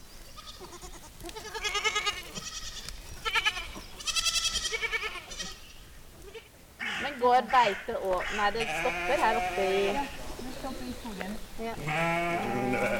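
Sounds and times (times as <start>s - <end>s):
several goats bleating in wavering calls: 0.3s - 10.4s, 11.7s - 12.9s
speech: 7.2s - 12.9s.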